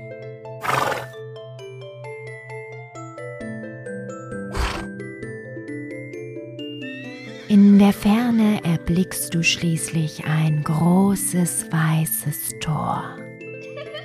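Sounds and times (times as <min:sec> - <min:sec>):
steady gentle instrumental music: 0:00.0 - 0:14.0
horse neighing and snorting: 0:00.6 - 0:01.2, 0:04.5 - 0:04.9
speech: 0:07.5 - 0:13.2.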